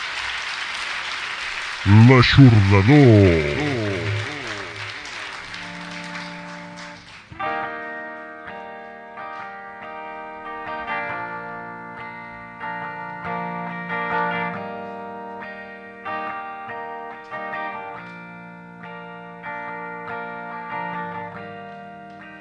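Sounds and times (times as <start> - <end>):
crowd applause: 0.0 - 7.3
speech: 1.8 - 3.8
sustained effects-laden guitar chords: 1.9 - 5.3.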